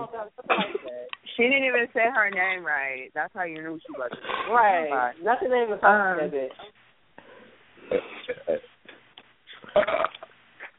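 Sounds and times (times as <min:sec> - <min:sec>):
speech: 0:01.4 - 0:06.8, 0:07.9 - 0:08.7, 0:09.8 - 0:10.2
loud croaky burp: 0:07.9 - 0:08.7, 0:09.6 - 0:10.3.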